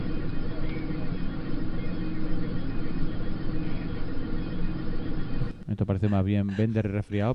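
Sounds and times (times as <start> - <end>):
airplane cabin engine roar: 0.0 - 5.6
speech: 5.8 - 7.3.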